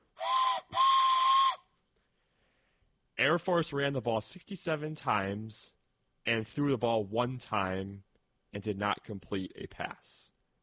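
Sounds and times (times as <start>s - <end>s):
train whistle with bright reedy multi-tone chord: 0.1s - 1.7s
speech: 3.2s - 10.4s.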